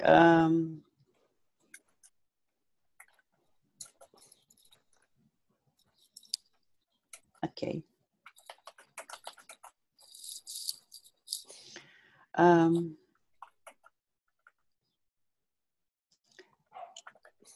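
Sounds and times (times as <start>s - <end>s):
speech: 0.0s - 0.8s, 7.6s - 7.9s, 12.4s - 13.0s
soft irregular typing on a computer keyboard: 3.0s - 5.0s, 8.2s - 11.5s, 13.3s - 14.6s.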